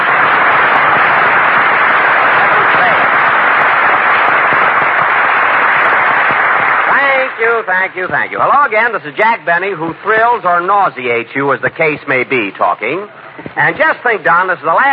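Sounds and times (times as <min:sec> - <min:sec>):
large studio audience applause: 0:00.0 - 0:09.0
speech: 0:07.6 - 0:14.9.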